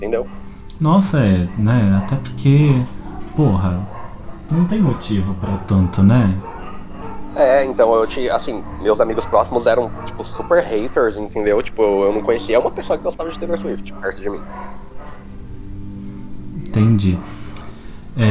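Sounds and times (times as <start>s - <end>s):
speech: 0.0s - 6.5s, 7.4s - 14.8s, 16.7s - 17.4s
many dogs barking: 0.0s - 15.6s.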